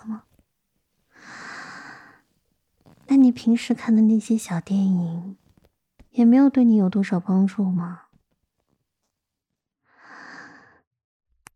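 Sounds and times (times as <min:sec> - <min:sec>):
speech: 0:03.3 - 0:05.4, 0:06.2 - 0:08.0
heavy breathy exhale: 0:09.9 - 0:10.8.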